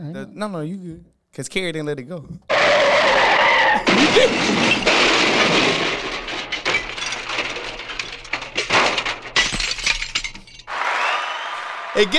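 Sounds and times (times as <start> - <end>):
speech: 0.1 - 6.0, 12.0 - 12.1
tires screeching in a skid: 2.5 - 4.0
car crash of crunching metal: 2.5 - 10.8
debris clattering: 2.5 - 10.8
glass shattering: 2.9 - 10.7.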